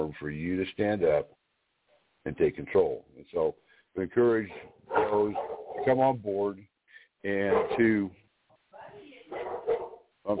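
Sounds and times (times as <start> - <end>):
speech: 0.0 - 1.4, 2.2 - 8.2
dog barking excitedly greeting someone at a door: 4.5 - 6.0, 7.4 - 8.0, 9.3 - 10.3.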